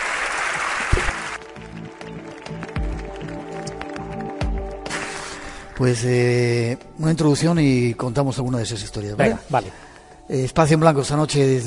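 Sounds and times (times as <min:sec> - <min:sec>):
audience applause: 0:00.0 - 0:05.3
speech: 0:05.8 - 0:11.6.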